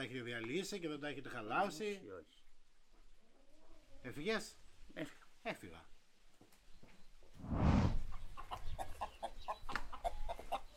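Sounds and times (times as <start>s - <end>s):
speech: 0.0s - 2.4s, 4.0s - 5.9s
mountain hen clucking while being readied for cooking: 8.1s - 10.7s.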